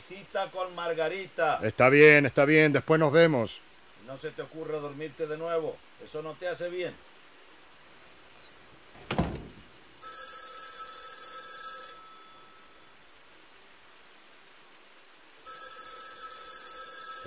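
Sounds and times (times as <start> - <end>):
speech: 0.1 - 7.1
telephone ringing: 10.0 - 12.9, 15.4 - 17.2.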